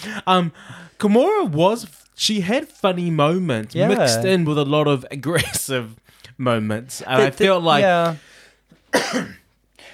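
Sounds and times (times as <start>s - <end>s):
speech: 0.0s - 9.4s
person coughing harshly: 8.9s - 9.5s.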